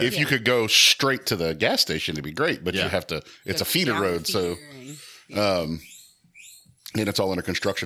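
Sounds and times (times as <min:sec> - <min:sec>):
speech: 0:00.0 - 0:05.9, 0:06.9 - 0:07.8
guinea pig chirping: 0:05.8 - 0:06.8.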